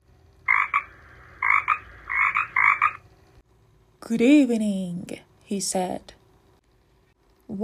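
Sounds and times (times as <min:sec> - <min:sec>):
frog croaking: 0:00.4 - 0:03.0
speech: 0:04.1 - 0:06.2.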